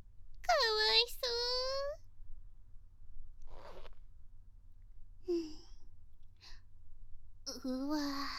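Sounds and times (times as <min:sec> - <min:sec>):
faint low hum: 0:00.0 - 0:08.3
zipper on clothing unzipping: 0:03.5 - 0:04.0
speech: 0:07.6 - 0:08.3.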